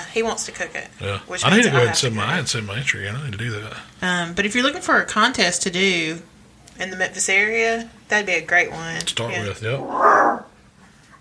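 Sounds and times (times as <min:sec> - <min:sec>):
speech: 0:00.2 - 0:10.4
dog growling: 0:09.8 - 0:10.5.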